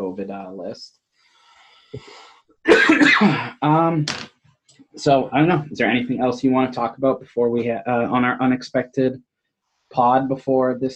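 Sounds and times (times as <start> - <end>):
speech: 0.2 - 1.0, 1.9 - 4.3, 5.0 - 9.3, 9.9 - 10.9
person coughing: 2.7 - 3.7.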